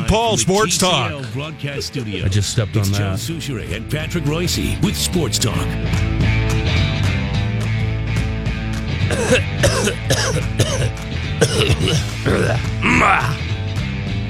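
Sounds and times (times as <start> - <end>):
steady music: 0.0 - 14.2
speech: 0.1 - 6.4, 9.1 - 13.5
throat clearing: 9.1 - 13.4
harsh coughing: 9.1 - 13.5
voice-like sounds: 11.8 - 13.4.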